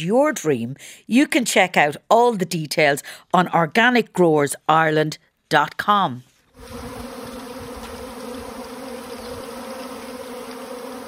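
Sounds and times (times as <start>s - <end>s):
speech: 0.0s - 7.0s
many bees buzzing together: 6.6s - 11.0s.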